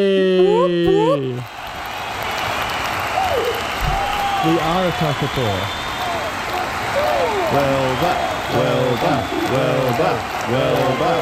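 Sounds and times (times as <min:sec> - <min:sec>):
speech: 0:00.0 - 0:01.5, 0:04.4 - 0:05.8, 0:07.5 - 0:11.2
excited voices whooping and calling out: 0:00.5 - 0:11.2
crowd cheering and clapping: 0:00.9 - 0:11.2
laughter: 0:06.9 - 0:11.2.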